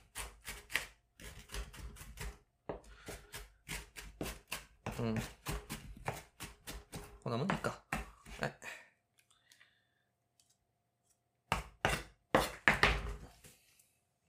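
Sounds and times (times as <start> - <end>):
knife finely chopping vegetables and onion for fried rice: 0.0 - 8.4, 11.5 - 13.3
speech: 5.0 - 5.5, 7.3 - 7.8, 8.4 - 8.6.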